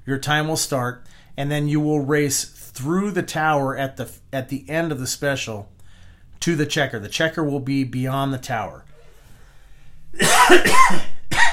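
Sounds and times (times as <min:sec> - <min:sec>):
speech: 0:00.0 - 0:05.8, 0:06.4 - 0:08.9, 0:10.1 - 0:11.1
person coughing harshly: 0:10.2 - 0:11.5.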